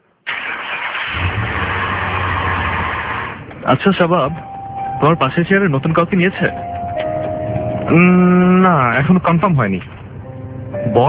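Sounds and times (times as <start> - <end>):
car engine starting and idling: 0.3 - 11.0
speech: 3.7 - 6.7, 7.9 - 9.9, 10.8 - 11.0.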